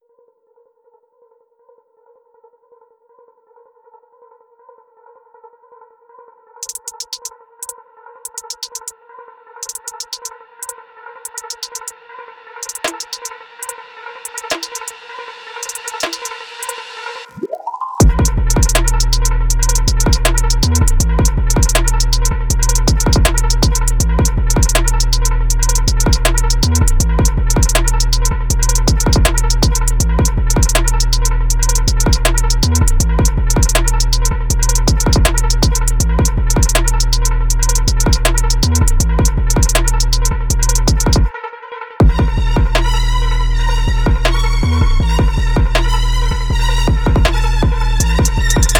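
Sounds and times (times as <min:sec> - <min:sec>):
arpeggiated beat: 0:06.6 - 0:07.3, 0:08.3 - 0:08.9, 0:09.6 - 0:10.3, 0:11.3 - 0:11.9, 0:12.6 - 0:15.0, 0:15.6 - 0:16.8, 0:17.4 - 0:41.3, 0:42.0 - 0:48.7.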